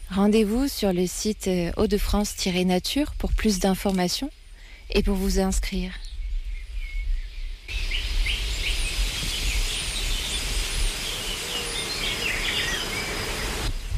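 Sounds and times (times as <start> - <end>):
speech: 0.1 - 6.0
scattered bird chirps: 6.0 - 13.9
dense steady drone of buzzing insects: 7.7 - 13.9.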